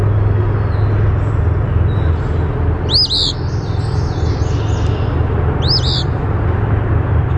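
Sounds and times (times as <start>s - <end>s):
heavy continuous low hum: 0.0s - 7.3s
Eastern phoebe singing: 2.9s - 3.5s, 5.6s - 6.2s.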